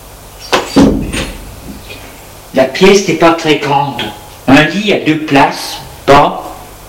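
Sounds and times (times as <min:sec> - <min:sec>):
dull wooden thump of a swinging bedroom door: 0:00.6 - 0:01.5
speech: 0:02.7 - 0:06.4.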